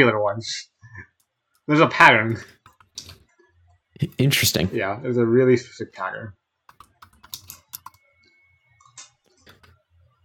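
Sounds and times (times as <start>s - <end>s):
speech: 0.0s - 0.7s, 1.7s - 3.1s, 4.0s - 6.4s
typing on a computer keyboard: 6.7s - 8.0s.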